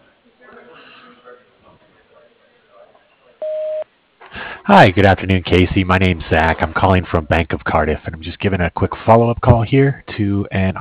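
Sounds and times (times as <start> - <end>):
phone line noise: 0.0 - 10.7
voicemail recording electronic beep tone: 3.4 - 3.8
speech: 4.7 - 10.7.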